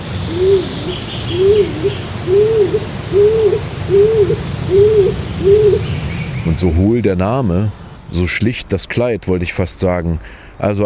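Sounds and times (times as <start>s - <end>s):
stock dove courtship call: 0.0s - 6.9s
speech: 6.6s - 10.8s.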